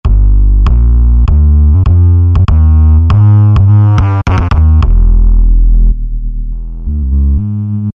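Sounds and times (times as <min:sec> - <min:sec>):
synth bass on a Roland V-Synth: 0:00.0 - 0:07.9.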